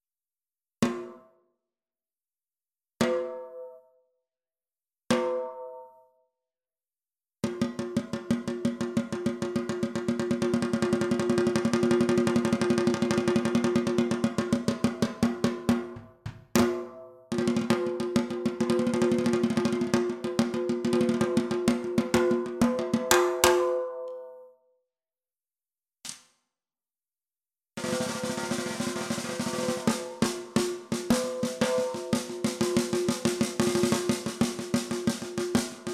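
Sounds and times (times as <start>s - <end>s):
maple 12x7 snare drum: 7.4s - 23.8s, 27.8s - 35.9s.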